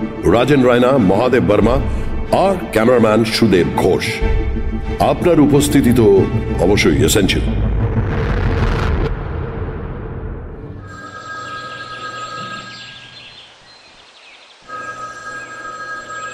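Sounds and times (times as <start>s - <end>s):
speech: 0.2s - 7.6s
loud rumbling burst: 4.5s - 10.8s
hotel room telephone ringing with an electronic trill: 10.8s - 13.3s, 14.7s - 16.3s.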